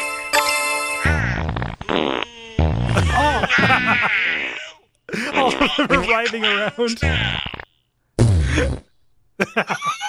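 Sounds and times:
loud drawn-out buzzy farts: 0:01.0 - 0:04.6, 0:07.0 - 0:09.0
laughter: 0:02.3 - 0:07.7, 0:09.4 - 0:10.0
speech: 0:03.6 - 0:04.6, 0:05.8 - 0:07.4, 0:08.6 - 0:10.0.

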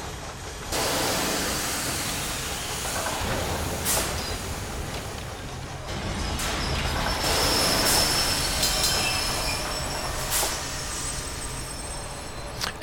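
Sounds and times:
roller coaster lift machinery rumble in the boarding station: 0:00.0 - 0:12.8
hissing bursts of steam: 0:00.7 - 0:05.2, 0:06.4 - 0:12.5
metallic squeals: 0:05.9 - 0:12.6.

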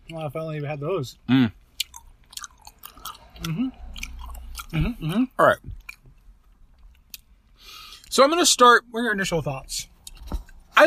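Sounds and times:
speech: 0:00.1 - 0:01.6, 0:03.4 - 0:03.8, 0:04.7 - 0:05.8, 0:08.1 - 0:09.9
moist chewing of firm sticky cola gummy candy: 0:01.8 - 0:05.1.

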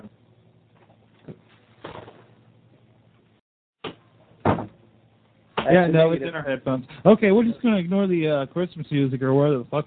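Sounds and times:
wooden door being pushed shut: 0:04.4 - 0:04.8
speech: 0:05.6 - 0:09.8.

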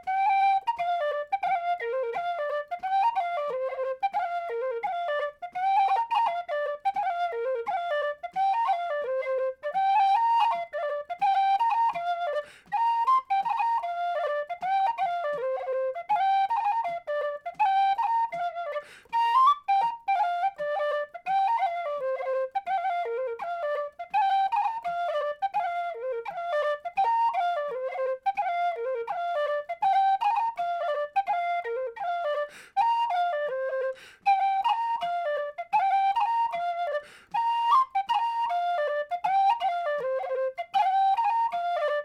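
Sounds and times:
lively dance tune played on a tin whistle: 0:00.0 - 0:42.0.

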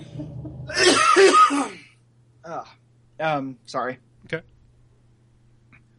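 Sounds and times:
person coughing harshly: 0:00.7 - 0:01.9
speech: 0:02.6 - 0:04.5.

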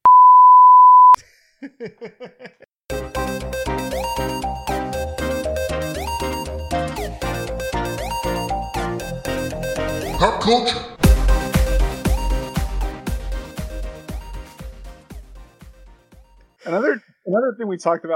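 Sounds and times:
censor bleep covering an expletive: 0:00.0 - 0:01.2
laughter: 0:01.6 - 0:02.7
speech: 0:01.8 - 0:02.7, 0:10.4 - 0:10.9, 0:17.4 - 0:18.1
upbeat music: 0:02.9 - 0:16.5.

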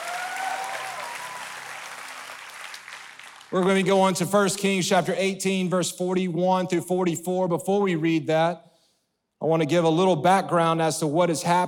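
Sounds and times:
church audience applause during an evening service: 0:00.0 - 0:03.9
speech: 0:03.5 - 0:08.7, 0:09.4 - 0:11.6.

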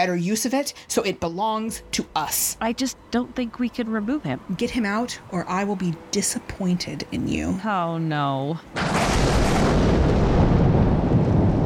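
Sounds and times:
speech: 0:00.0 - 0:09.6
thunder crash and rumble of a fierce storm: 0:08.8 - 0:11.6.

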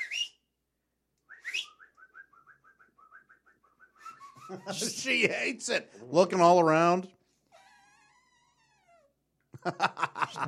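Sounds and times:
person whistling at a dog: 0:00.0 - 0:00.5, 0:01.2 - 0:04.7
laughter: 0:04.4 - 0:05.4, 0:09.6 - 0:10.4
speech: 0:04.5 - 0:07.2, 0:09.6 - 0:10.4.

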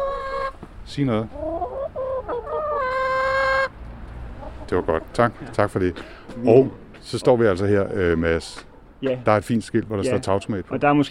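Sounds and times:
hens clucking on a rooftop garden: 0:00.0 - 0:07.4
speech: 0:00.9 - 0:01.4, 0:04.7 - 0:11.0.

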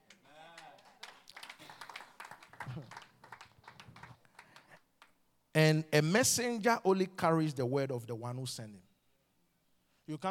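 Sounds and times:
crowd clapping in a large room: 0:00.0 - 0:05.2
man speaking loudly in a large room: 0:05.6 - 0:08.8, 0:10.1 - 0:10.3
speech: 0:05.6 - 0:08.9, 0:10.1 - 0:10.3.

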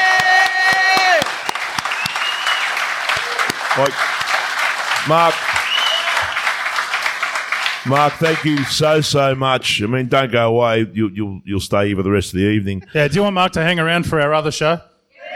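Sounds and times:
whoops and cheers: 0:00.0 - 0:03.6, 0:05.6 - 0:06.5, 0:15.2 - 0:15.3
crowd applauding: 0:00.0 - 0:09.4
speech: 0:03.8 - 0:04.1, 0:05.0 - 0:05.6, 0:07.8 - 0:14.9.

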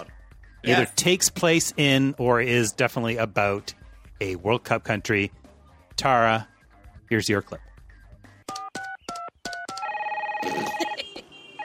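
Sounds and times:
speech: 0:00.6 - 0:05.4, 0:06.0 - 0:06.5, 0:07.1 - 0:07.7
car phone ringing with electronic chirps and warbling trill: 0:08.6 - 0:11.6.

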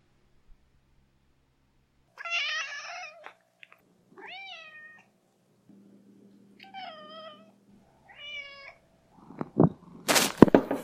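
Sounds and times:
cat meowing: 0:02.2 - 0:03.4, 0:04.2 - 0:05.1, 0:06.6 - 0:07.5, 0:08.1 - 0:08.8
rustling or handling noise: 0:09.3 - 0:10.8.

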